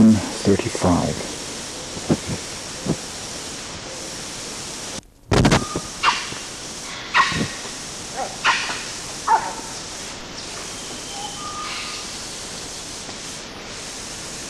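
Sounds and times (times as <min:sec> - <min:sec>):
steady hiss: 0:00.0 - 0:14.4
speech: 0:00.4 - 0:01.4
animal chist calls: 0:05.7 - 0:12.9.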